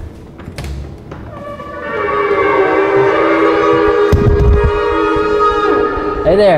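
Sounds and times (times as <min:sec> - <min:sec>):
several shofars blown by synagogue shofar blowers in a Unitarian church: 0:01.3 - 0:06.5
speech: 0:06.3 - 0:06.5.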